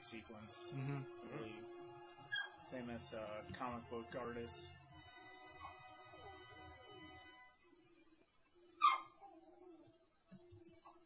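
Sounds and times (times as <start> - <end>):
faint steady musical drone: 0.0 - 11.0
speech: 0.1 - 4.8
frightened dog whining and whimpering: 2.3 - 2.6, 5.6 - 6.4, 8.8 - 9.8, 10.7 - 11.0
dog frightened by a storm barking: 8.8 - 9.4.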